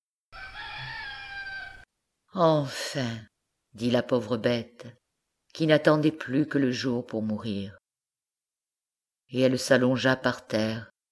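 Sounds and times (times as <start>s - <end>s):
hoarse rooster crowing from a farmstead: 0.3s - 1.9s
speech: 2.4s - 7.8s, 9.3s - 10.9s.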